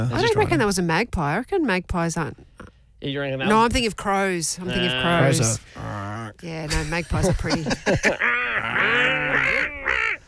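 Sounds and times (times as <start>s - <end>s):
speech: 0.0s - 8.3s
laughter: 6.7s - 10.2s
gull calling: 8.0s - 10.2s.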